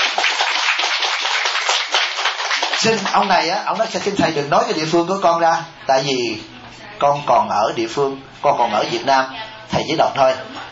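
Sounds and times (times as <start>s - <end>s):
audience applause at a Buddhist teaching question-and-answer session: 0.0s - 3.4s
speech: 2.8s - 10.5s.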